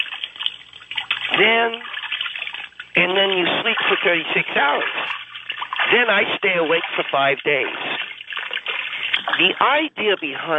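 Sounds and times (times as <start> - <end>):
water splashing back and forth in a bath or basin: 0.0 - 10.5
speech: 1.4 - 1.9, 3.0 - 5.2, 5.8 - 8.0, 9.3 - 10.5.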